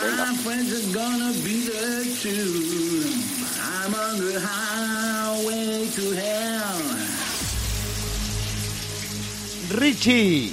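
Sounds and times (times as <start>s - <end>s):
person singing a wavering melody: 0.0s - 7.2s
shower water running: 0.0s - 10.5s
speech: 0.3s - 7.0s, 9.7s - 10.5s.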